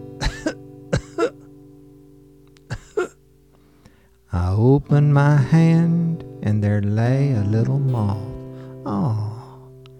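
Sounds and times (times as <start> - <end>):
short coughs: 0.2 - 1.5, 2.7 - 3.2
speech: 4.4 - 9.3.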